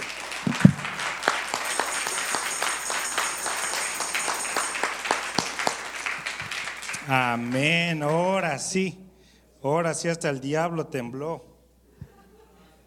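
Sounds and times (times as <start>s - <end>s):
large crowd applauding enthusiastically: 0.0s - 8.4s
faint high ringing tone: 1.6s - 5.2s
speech: 7.1s - 9.0s, 9.6s - 11.5s.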